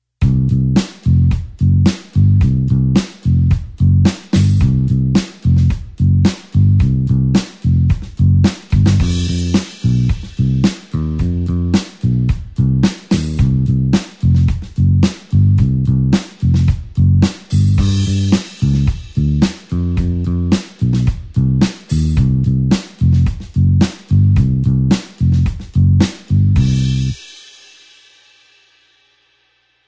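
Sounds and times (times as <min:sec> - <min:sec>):
blues bassline in C with an eight-beat rhythm: 0:00.2 - 0:27.2.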